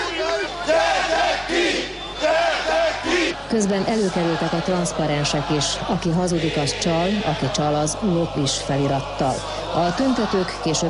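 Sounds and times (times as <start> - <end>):
large crowd of protesters shouting and chanting at City Hall in Miskolc: 0.0 - 10.8
speech: 3.5 - 10.8.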